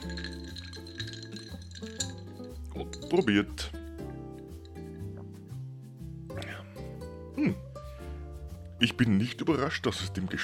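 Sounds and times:
spoon clinking against a glass while stirring a drink: 0.0s - 3.7s
steady music: 0.0s - 10.4s
speech: 2.8s - 3.8s, 9.0s - 10.4s.

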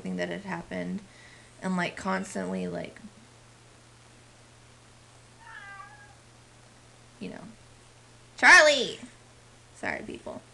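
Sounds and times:
faint steady hum: 0.0s - 10.5s
speech: 0.1s - 3.1s, 7.2s - 7.6s, 8.4s - 9.2s, 9.8s - 10.5s
cat meowing for attention: 5.4s - 6.2s.

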